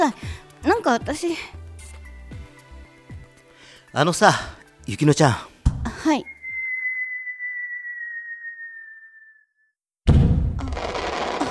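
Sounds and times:
speech: 0.0 - 1.6, 3.9 - 6.3
firework whistling upward: 6.0 - 9.5, 10.7 - 11.4
firework bursting in a deep boom and crackle: 10.1 - 11.4.

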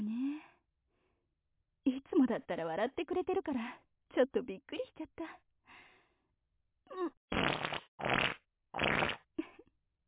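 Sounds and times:
speech: 2.1 - 5.5, 8.8 - 9.1
fart noises, squeaky and raspy: 7.3 - 9.3.

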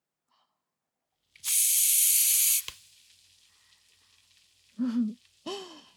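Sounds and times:
foam bubbles fizzing and crackling: 1.4 - 5.9
foam sprayed from a can: 1.4 - 5.9.

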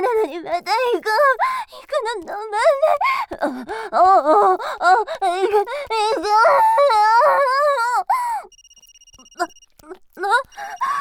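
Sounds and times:
speech: 0.4 - 7.8
smartphone ringtone for an incoming call: 8.5 - 9.8, 10.5 - 11.0.

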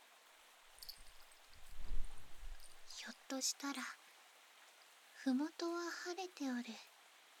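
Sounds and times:
soft steady rain hissing: 0.0 - 7.3
faint low rumble: 0.8 - 3.1
speech: 3.3 - 4.0, 5.2 - 6.9.

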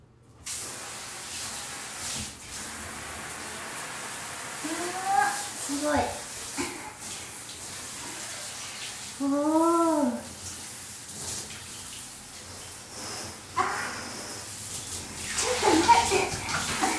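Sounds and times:
shower water spraying: 0.4 - 16.9
person exclaiming: 4.6 - 6.0, 9.2 - 10.2
speech: 5.8 - 6.2.

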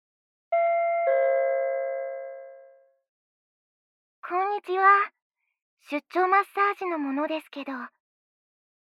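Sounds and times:
two-tone intercom doorbell chime: 0.6 - 3.0
speech: 4.3 - 5.2, 5.8 - 8.0.

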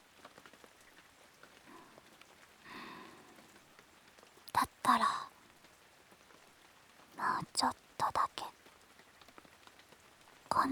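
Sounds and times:
steady rain on a hard surface: 0.0 - 10.6
speech: 4.9 - 5.2.

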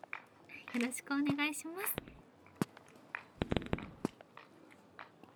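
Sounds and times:
speech: 0.8 - 2.0
time-signal fireworks being launched: 3.3 - 4.2.

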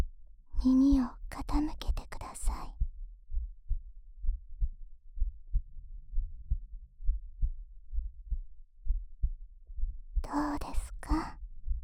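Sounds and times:
speech: 0.6 - 2.8
faint rumble: 0.6 - 11.8
human heartbeat thumping at a resting pace: 2.7 - 11.8.

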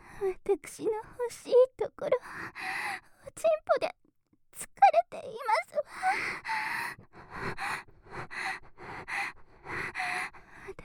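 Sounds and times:
speech: 0.2 - 4.0
breathy rhythmic panting: 2.2 - 3.1, 5.9 - 10.8.

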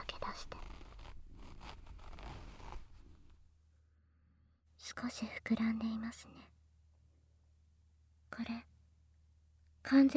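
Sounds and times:
trouser zipper being pulled open: 0.0 - 3.4
speech: 4.9 - 6.6, 8.3 - 8.7, 9.8 - 10.1.

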